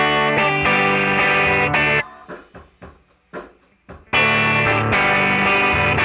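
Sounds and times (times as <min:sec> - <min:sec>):
electric guitar with mild amp overdrive: 0:00.0 - 0:02.0, 0:04.1 - 0:06.0.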